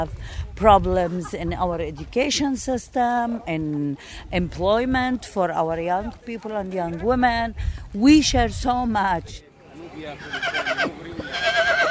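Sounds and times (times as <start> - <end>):
speech: 0.0 - 11.8
Arabian colt whinnying at a horse show: 10.2 - 11.8.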